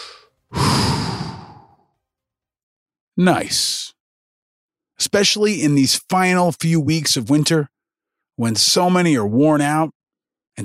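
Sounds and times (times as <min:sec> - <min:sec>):
long heavy sighing exhale: 0:00.0 - 0:01.8
person inhaling: 0:00.0 - 0:01.8
speech: 0:03.2 - 0:04.0, 0:05.0 - 0:07.7, 0:08.4 - 0:10.0.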